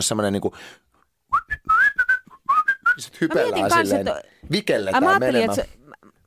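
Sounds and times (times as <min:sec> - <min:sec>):
speech: 0:00.0 - 0:00.9, 0:03.0 - 0:05.8
person whistling a short lilting melody: 0:01.3 - 0:03.2.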